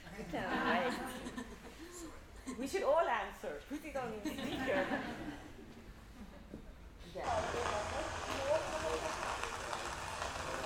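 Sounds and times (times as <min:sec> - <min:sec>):
speech: 0:00.2 - 0:01.6, 0:02.6 - 0:05.5, 0:07.1 - 0:08.1
laughter: 0:00.2 - 0:01.9, 0:04.2 - 0:06.5
steady rain falling: 0:07.2 - 0:10.6.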